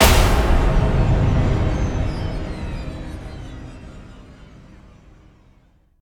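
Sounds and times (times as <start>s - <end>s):
human death stinger sound: 0.0s - 5.6s.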